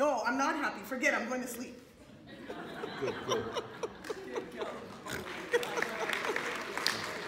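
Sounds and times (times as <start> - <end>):
speech: 0.3 - 1.9, 2.5 - 3.8
laughter: 2.1 - 7.2
audience clapping: 4.0 - 7.2.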